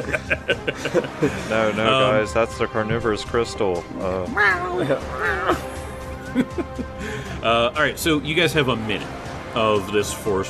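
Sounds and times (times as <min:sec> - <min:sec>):
laughter: 0:00.0 - 0:02.5, 0:04.4 - 0:07.6
speech: 0:00.0 - 0:05.7, 0:06.3 - 0:10.4
cat howling: 0:04.2 - 0:05.7.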